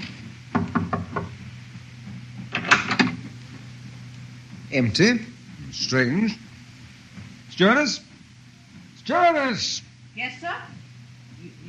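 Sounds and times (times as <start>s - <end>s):
low steady hum: 0.0s - 11.6s
knocking on a wooden cabin door: 0.5s - 1.4s
speech: 4.7s - 6.4s, 7.6s - 8.1s, 9.1s - 10.7s.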